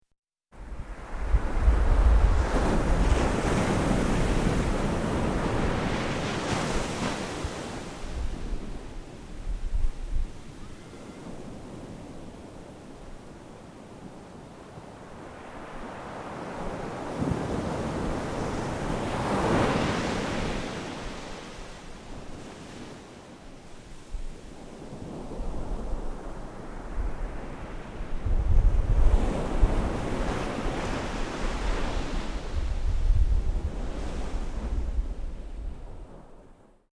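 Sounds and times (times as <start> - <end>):
quiet ocean in Baja: 0.5 - 36.9.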